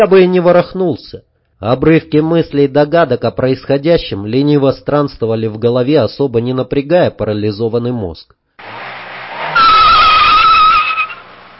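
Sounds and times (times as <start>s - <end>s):
speech: 0.0s - 8.4s
car brakes squealing to a halt: 8.6s - 11.5s.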